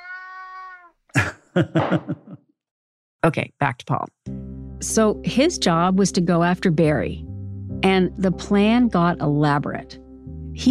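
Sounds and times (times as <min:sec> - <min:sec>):
male cat meowing and yowling: 0:00.0 - 0:01.0
laughter: 0:01.2 - 0:02.4
speech: 0:01.2 - 0:02.4, 0:03.2 - 0:10.0.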